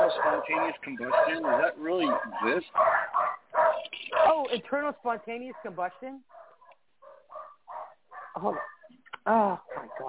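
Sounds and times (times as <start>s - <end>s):
dogs barking: 0.0s - 9.0s, 9.7s - 10.0s
speech: 0.3s - 3.1s, 4.3s - 6.4s, 8.4s - 10.0s.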